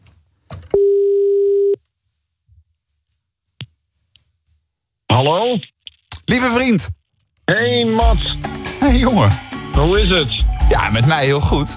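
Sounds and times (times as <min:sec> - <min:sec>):
telephone ringing tone of an outgoing call: 0:00.8 - 0:01.8
speech: 0:05.2 - 0:05.7, 0:06.3 - 0:11.7.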